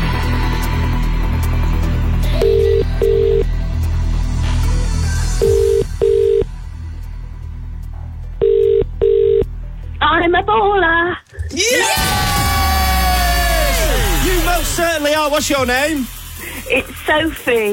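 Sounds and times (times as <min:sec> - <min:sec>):
low music: 0:00.0 - 0:17.7
telephone ringing tone in double bursts heard down the line: 0:02.4 - 0:03.5, 0:05.4 - 0:06.5, 0:08.4 - 0:09.4
speech: 0:15.4 - 0:17.7.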